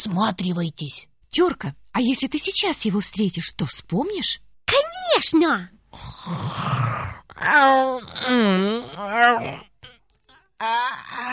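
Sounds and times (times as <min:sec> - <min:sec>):
speech: 0:00.0 - 0:09.7, 0:10.6 - 0:11.3
person snoring loudly by a door: 0:06.0 - 0:09.7.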